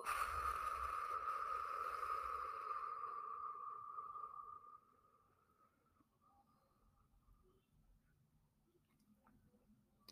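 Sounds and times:
long slow breath blown out: 0.0s - 5.0s
faint sustained tone: 0.0s - 7.7s.

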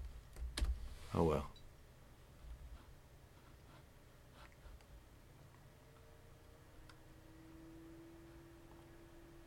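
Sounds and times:
computer cooling fan whirring: 0.0s - 9.4s
speech: 1.1s - 1.6s
soft tonal whine: 5.1s - 9.4s.

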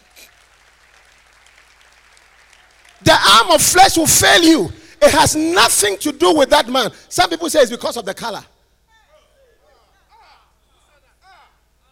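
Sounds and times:
audience clapping: 0.0s - 3.8s
speech: 3.0s - 8.5s.

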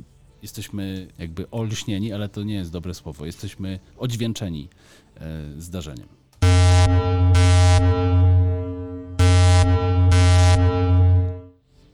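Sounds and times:
speech: 0.4s - 6.2s
submarine sonar signal with rhythmic brighter pulses: 6.4s - 11.5s.

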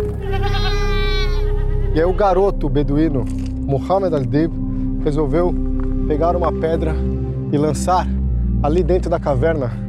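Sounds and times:
single goat bleating with a long quavering cry: 0.2s - 2.2s
speech: 2.0s - 9.8s.

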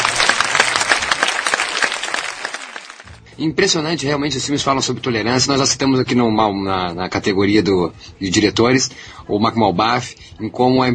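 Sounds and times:
crowd applauding: 0.0s - 3.2s
speech: 3.4s - 10.9s.

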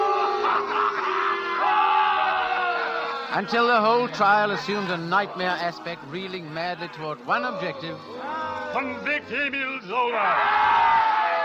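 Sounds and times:
dense crowd at a trial jeering and yelling: 0.0s - 11.4s
speech: 3.3s - 10.8s.

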